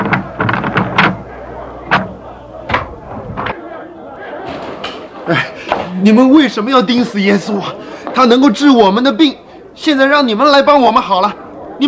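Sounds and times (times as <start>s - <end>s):
thuds and bangs: 0.0s - 1.3s, 1.9s - 3.6s
noisy crowd clamoring in an open space: 0.0s - 5.7s
speech: 5.3s - 11.8s.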